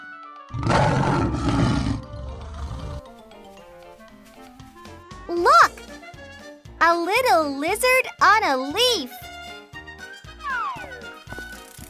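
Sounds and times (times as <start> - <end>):
lion roaring: 0.5 - 3.1
speech: 6.8 - 9.2.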